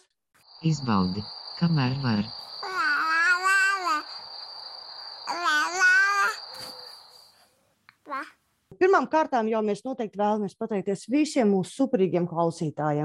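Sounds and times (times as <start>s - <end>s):
speech: 0.6s - 2.6s, 9.0s - 13.0s
one-year-old baby girl squealing: 2.6s - 4.1s, 5.3s - 6.9s
one-year-old baby girl babbling in a studio: 2.6s - 4.2s, 5.3s - 6.8s, 8.0s - 8.4s.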